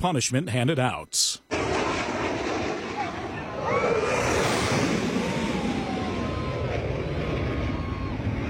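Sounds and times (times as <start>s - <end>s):
speech: 0.0s - 1.4s
military jet roaring low over water at a Florida beach: 1.5s - 8.4s.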